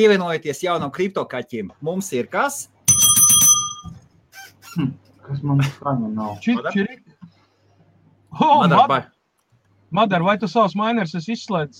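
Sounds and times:
speech: 0:00.0 - 0:03.2, 0:04.8 - 0:07.0, 0:08.4 - 0:09.2, 0:09.9 - 0:11.7
bright notification bell chime with metallic tone: 0:02.9 - 0:04.0.

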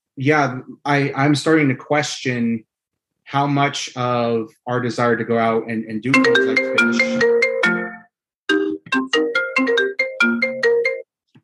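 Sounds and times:
speech: 0:00.2 - 0:02.7, 0:03.3 - 0:07.3
phone ringtone with a bright bouncy electronic melody: 0:06.1 - 0:11.1.

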